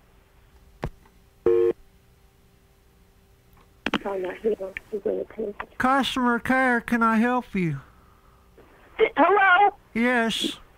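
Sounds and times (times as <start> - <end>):
faint steady telephone line tone: 1.4 - 1.8
speech: 4.1 - 7.9, 9.1 - 10.6.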